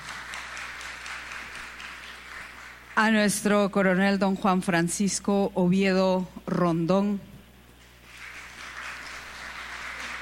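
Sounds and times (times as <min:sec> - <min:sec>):
audience applause at a ceremony honoring military officers: 0:00.0 - 0:03.0, 0:08.0 - 0:10.2
speech: 0:03.0 - 0:07.3.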